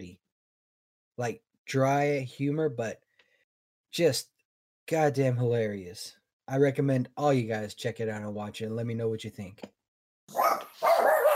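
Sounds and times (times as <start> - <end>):
speech: 1.2 - 3.0, 3.9 - 4.3, 4.9 - 10.5
dog barking: 10.3 - 11.3.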